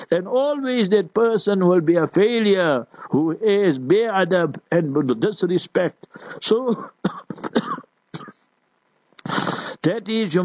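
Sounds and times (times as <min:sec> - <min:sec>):
speech: 0:00.1 - 0:07.8, 0:09.3 - 0:10.4
person coughing: 0:06.5 - 0:08.5.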